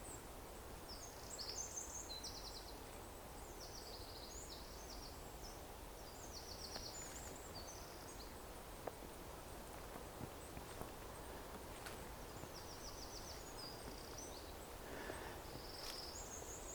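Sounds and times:
songbird, possibly a finch, singing high chirping phrases: 0.9 - 8.5, 9.4 - 16.7
faint rustling footsteps: 8.8 - 16.2.

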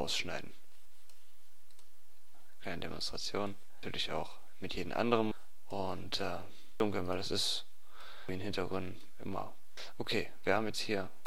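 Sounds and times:
speech: 0.0 - 0.6, 2.6 - 7.7, 8.3 - 11.2
faint hiss: 0.0 - 11.2
computer mouse clicking while editing images: 1.0 - 2.0.

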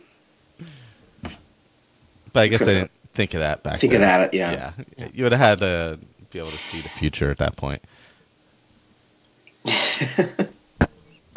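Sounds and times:
speech: 0.6 - 0.8, 2.3 - 8.0, 9.6 - 10.4
person coughing into the microphone: 2.5 - 2.9, 9.6 - 11.3.

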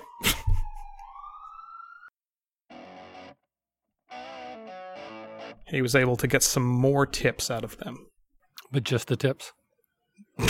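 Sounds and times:
ambulance siren wailing while passing by: 0.0 - 3.2
speech: 5.7 - 8.1, 8.7 - 9.6.

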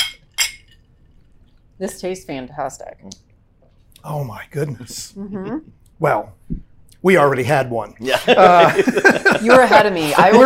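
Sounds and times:
glasses of Nebraska corn spirit clinking in a toast: 0.0 - 1.1
speech: 1.8 - 3.3, 4.0 - 10.4
laughter: 8.0 - 10.4.

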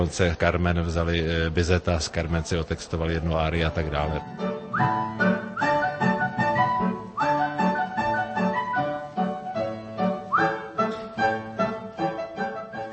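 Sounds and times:
speech: 0.0 - 5.2
steady instrumental accompaniment with bouncy rhythm: 3.9 - 12.9
whistled melody with rising slides: 4.7 - 9.0, 10.1 - 10.9, 12.7 - 12.9.

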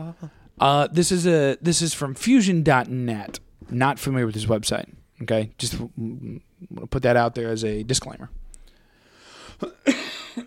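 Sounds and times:
speech: 0.1 - 8.4
harsh explosive cough: 9.6 - 10.4.

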